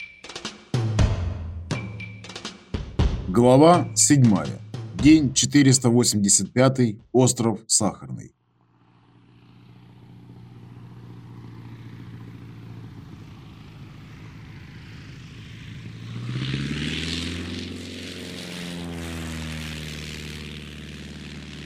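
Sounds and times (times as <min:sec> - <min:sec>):
speech: 0:03.3 - 0:08.4
An-2 propeller biplane engine droning overhead: 0:08.4 - 0:21.6.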